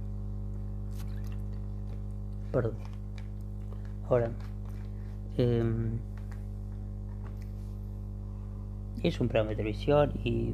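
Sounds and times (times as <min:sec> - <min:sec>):
steady low electrical hum: 0:00.0 - 0:10.5
person drinking a sip of water: 0:00.9 - 0:02.0
speech: 0:02.5 - 0:03.0, 0:04.1 - 0:04.5, 0:05.4 - 0:06.1, 0:09.0 - 0:10.5.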